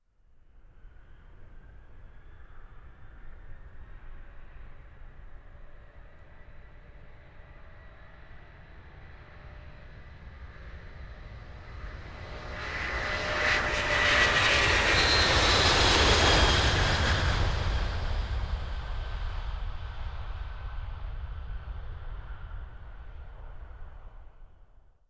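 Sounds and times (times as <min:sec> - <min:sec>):
jet aircraft approaching and flying over: 0:01.8 - 0:24.4.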